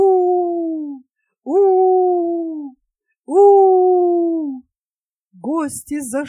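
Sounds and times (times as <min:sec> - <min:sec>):
voice imitating a wolf howling: 0:00.0 - 0:04.7
speech: 0:05.6 - 0:06.2.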